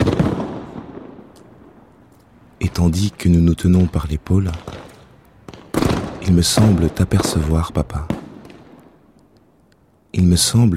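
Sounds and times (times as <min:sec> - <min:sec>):
fireworks explosion in the sky: 0:00.0 - 0:01.9, 0:04.5 - 0:09.0
speech: 0:02.8 - 0:04.8, 0:06.3 - 0:08.1, 0:10.2 - 0:10.7.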